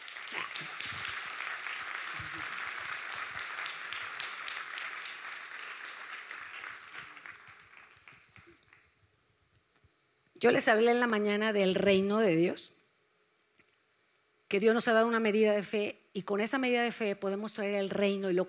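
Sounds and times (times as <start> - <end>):
audience applause: 0.0 - 8.9
speech: 0.3 - 1.1, 10.4 - 12.8, 14.5 - 18.4.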